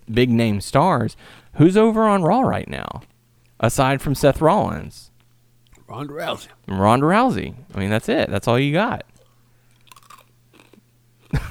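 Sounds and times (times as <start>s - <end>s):
speech: 0.1s - 5.1s, 5.9s - 9.1s
crunchy food chewed right up against a microphone: 9.1s - 11.5s.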